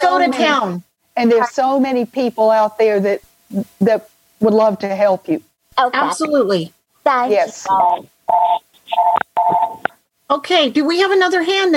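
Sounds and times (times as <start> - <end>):
speech: 0.2 - 11.7
phone ringing over a call line: 7.7 - 9.9.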